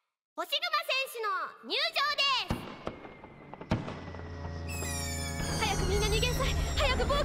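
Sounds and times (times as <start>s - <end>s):
speech: 0.4s - 2.5s, 6.9s - 7.2s
firework boom: 2.6s - 4.6s
bright high-pitched tone: 4.6s - 7.2s.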